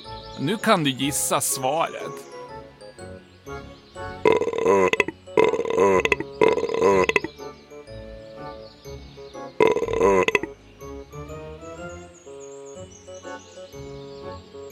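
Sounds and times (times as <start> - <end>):
soft tonal musical background: 0.0 - 14.6
speech: 0.4 - 2.3, 4.7 - 4.9
loud drawn-out croaky burps: 4.2 - 7.3, 9.6 - 10.5.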